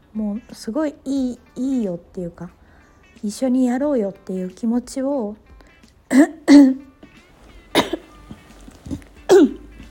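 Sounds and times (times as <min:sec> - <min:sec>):
speech: 0:00.2 - 0:02.6, 0:03.2 - 0:05.4, 0:06.1 - 0:06.8
person clearing throat: 0:06.1 - 0:06.8, 0:07.7 - 0:08.1, 0:08.8 - 0:09.7
person coughing: 0:06.1 - 0:06.8, 0:07.7 - 0:08.1, 0:08.9 - 0:09.7.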